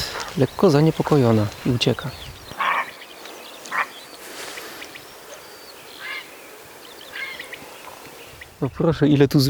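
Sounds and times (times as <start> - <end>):
faint outdoor background: 0.0 - 9.4
speech: 0.4 - 2.3, 8.6 - 9.4
grey heron hoarse rasping calls: 2.0 - 8.2.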